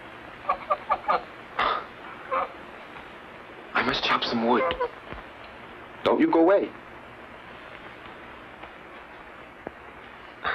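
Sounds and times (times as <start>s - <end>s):
faint hiss: 0.0s - 10.5s
goose clucking: 0.4s - 2.6s, 4.4s - 4.9s
speech: 4.2s - 4.9s, 6.0s - 6.8s.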